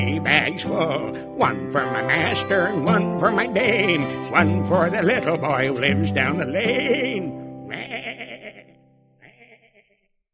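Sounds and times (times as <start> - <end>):
speech: 0.5 - 7.9
sheep bleating: 6.3 - 10.0.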